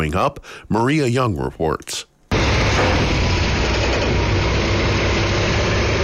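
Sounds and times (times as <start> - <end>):
speech: 0.0 - 2.1
semi truck engine rumbling at a construction site: 2.3 - 6.0.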